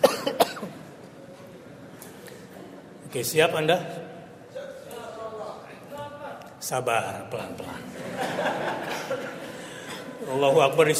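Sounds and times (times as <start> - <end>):
person speaking to a group coughing: 0.0 - 0.8
speech: 3.1 - 4.1, 6.7 - 9.1, 10.3 - 10.9
laughter: 7.8 - 10.4.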